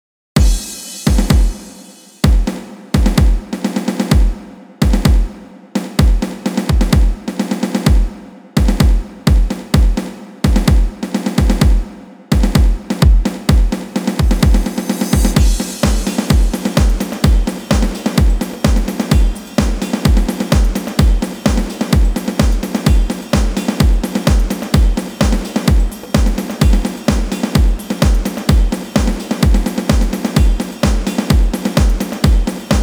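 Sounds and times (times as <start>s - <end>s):
drum solo: 0.4s - 32.8s.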